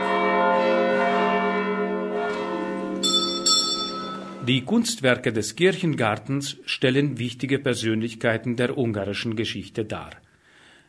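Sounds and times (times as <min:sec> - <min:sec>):
church bells pealing: 0:00.0 - 0:05.4
brighter higher bell striking: 0:02.3 - 0:04.6
speech: 0:04.5 - 0:10.2.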